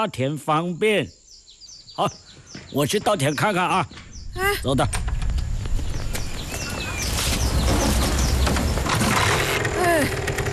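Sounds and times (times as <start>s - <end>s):
speech: 0.0s - 1.2s, 2.0s - 5.1s
birds chirping outdoors: 0.0s - 10.5s
motorcycle engine running: 7.4s - 10.5s.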